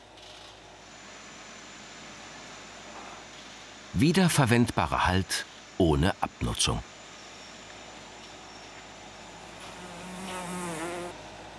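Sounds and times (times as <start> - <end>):
speech: 3.9 - 6.9
single fly buzzing: 9.4 - 11.2.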